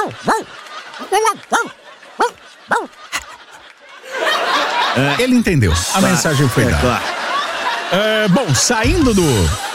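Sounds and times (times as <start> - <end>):
person imitating a dog barking with short yelping woofs: 0.0 - 2.9
speech: 0.0 - 3.0, 5.0 - 7.2, 7.9 - 9.7
laughter: 0.0 - 9.7.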